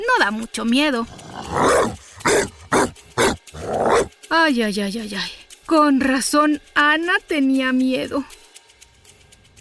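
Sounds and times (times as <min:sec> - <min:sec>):
speech: 0:00.0 - 0:02.0, 0:04.3 - 0:08.4
large dog growling menacingly: 0:01.0 - 0:04.1
large dog barking sharply: 0:01.6 - 0:04.1.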